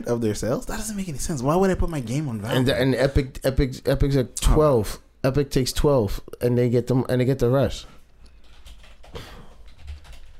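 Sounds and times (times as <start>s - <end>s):
speech: 0.0s - 8.0s
computer keyboard typing: 8.3s - 10.3s.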